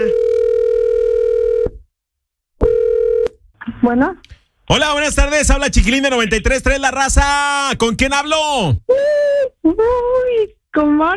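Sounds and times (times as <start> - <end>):
telephone ringback tone on a call to a radio listener: 0.0 - 1.8, 2.6 - 3.3
speech: 3.9 - 11.1.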